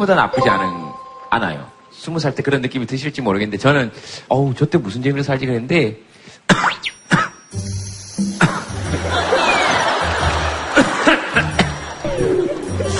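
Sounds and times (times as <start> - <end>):
speech: 0.0 - 6.7
person coughing: 8.4 - 8.7
crowd laughing and chuckling: 8.8 - 12.9.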